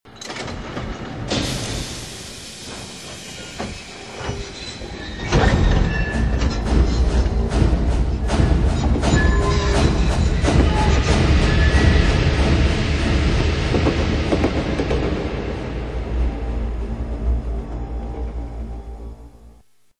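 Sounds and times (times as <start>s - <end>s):
train doors closing: 0.1s - 19.3s.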